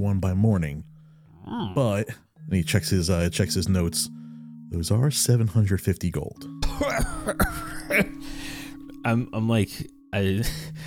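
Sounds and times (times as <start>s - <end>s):
speech: 0.0s - 0.9s, 1.5s - 10.8s
person hacking cough after a big smoke hit: 6.6s - 8.2s.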